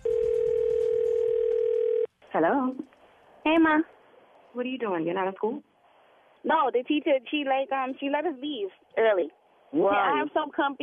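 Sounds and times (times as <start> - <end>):
telephone line tone of a phone call ringing through: 0.0 - 2.1
speech: 2.4 - 5.7, 6.4 - 10.8.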